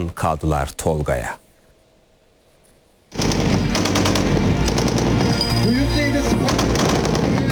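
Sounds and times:
speech: 0:00.0 - 0:01.4
close-range air defence gun system automatic fire during a firing test in Konya: 0:03.1 - 0:07.5.

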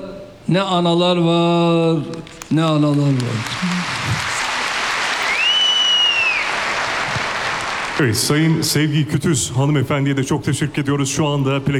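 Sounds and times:
speech: 0:00.5 - 0:04.3, 0:08.0 - 0:11.7
audience applause at a plaque ceremony: 0:02.1 - 0:08.2
high whistle-like tone: 0:05.3 - 0:06.5.

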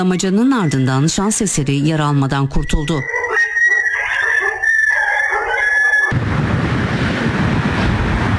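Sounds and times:
speech: 0:00.0 - 0:03.2
stray dogs barking and howling while chasing a child: 0:02.9 - 0:06.2
steady rushing wind-like noise: 0:06.1 - 0:08.3.

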